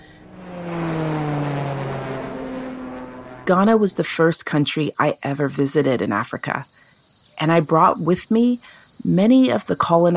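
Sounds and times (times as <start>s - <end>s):
airplane engine droning: 0.0s - 4.3s
speech: 3.5s - 6.8s, 7.4s - 10.1s.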